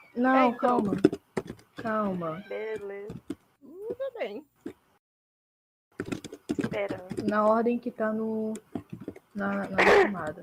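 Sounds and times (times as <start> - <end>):
speech: 0.2 - 1.2, 1.8 - 3.3, 3.9 - 4.8, 6.0 - 8.7, 9.4 - 10.4
sharp sneeze: 9.8 - 10.2.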